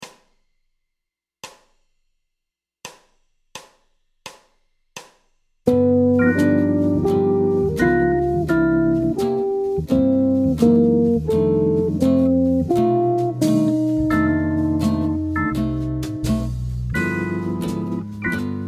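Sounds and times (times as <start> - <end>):
jazz guitar playing ii V7 I major chord progression: 5.7 - 18.6.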